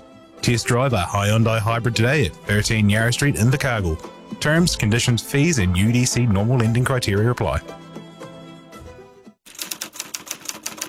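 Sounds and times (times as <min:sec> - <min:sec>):
speech: 0:00.4 - 0:07.8
brief musical phrase: 0:02.1 - 0:07.7
mechanical typewriter keystrokes: 0:09.5 - 0:10.8.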